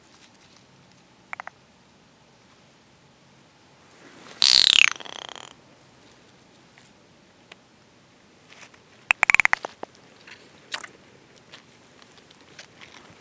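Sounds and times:
California giant salamander Dicamptodon ensatus raspy cry: 4.4s - 5.6s, 9.1s - 9.8s.

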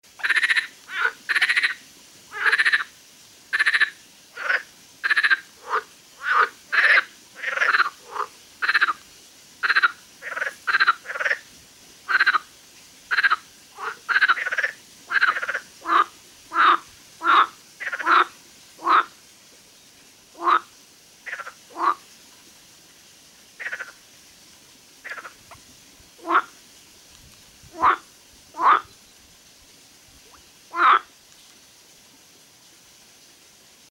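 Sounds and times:
Pelophylax ridibundus calling: 0.2s - 2.9s, 3.5s - 9.0s, 9.6s - 11.4s, 12.1s - 12.5s, 13.1s - 19.2s, 20.4s - 22.0s, 23.6s - 24.0s, 25.0s - 25.6s, 26.2s - 26.6s, 27.7s - 29.0s, 30.7s - 31.1s.

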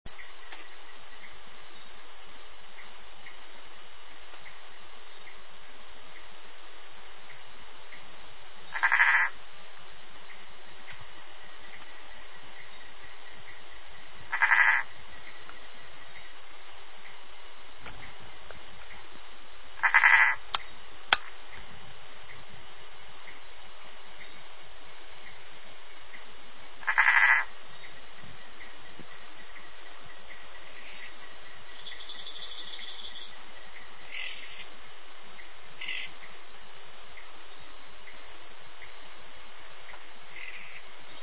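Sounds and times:
Bokermannohyla hylax calling: 7.2s - 9.5s, 10.2s - 36.4s, 39.8s - 41.2s.

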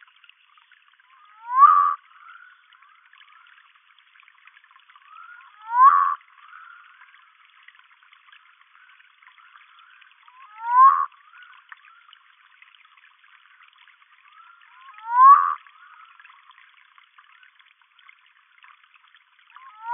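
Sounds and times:
Nyctibatrachus humayuni calling: 1.1s - 2.7s, 5.1s - 6.9s, 10.3s - 11.6s, 14.3s - 16.0s, 19.6s - 19.9s.

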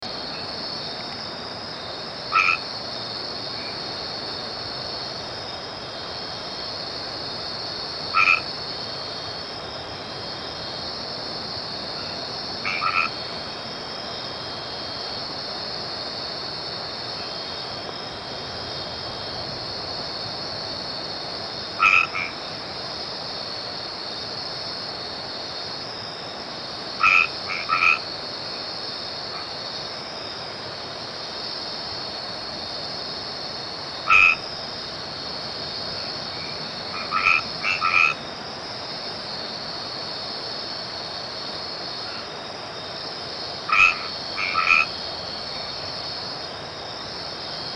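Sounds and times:
Boana albomarginata tree frog calling: 0.1s - 1.4s, 2.2s - 5.0s, 6.0s - 10.9s, 11.7s - 13.6s, 21.5s - 22.8s, 26.9s - 30.6s, 33.9s - 38.4s, 41.4s - 43.0s, 43.6s - 46.4s.

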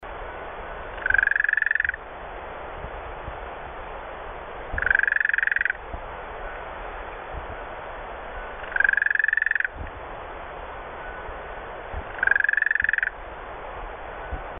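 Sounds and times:
Gastrotheca gracilis calling: 1.0s - 2.0s, 4.8s - 5.8s, 8.6s - 9.8s, 12.1s - 13.2s.

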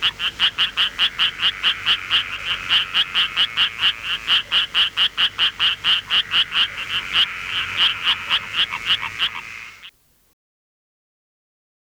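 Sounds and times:
striped rocket frog Litoria nasuta calling: 0.0s - 10.0s.

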